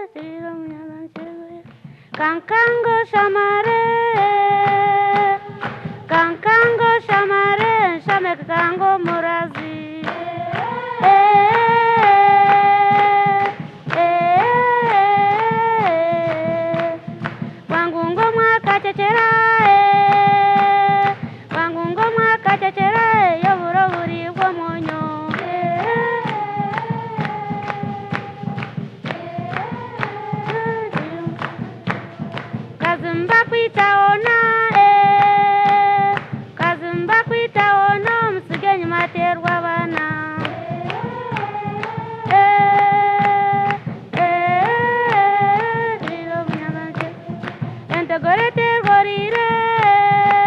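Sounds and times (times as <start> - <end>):
engalabi in Uganda: 1.1 - 50.4.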